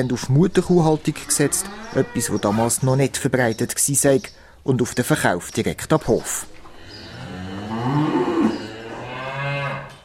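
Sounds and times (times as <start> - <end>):
speech: 0.0 - 6.6
suckler cows on a farm mooing: 1.0 - 3.0, 6.7 - 10.0.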